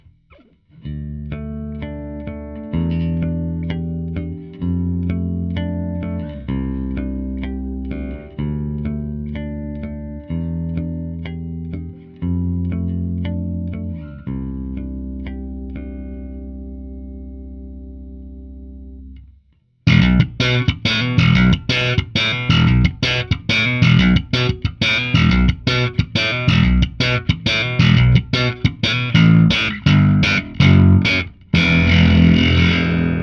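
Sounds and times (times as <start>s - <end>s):
Fender bass guitar: 0.0s - 33.2s.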